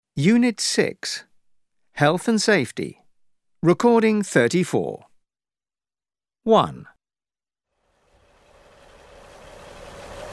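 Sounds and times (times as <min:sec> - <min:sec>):
speech: 0:00.2 - 0:01.3, 0:02.0 - 0:03.0, 0:03.6 - 0:05.1, 0:06.4 - 0:06.9
forklift engine rumbling: 0:08.2 - 0:10.3.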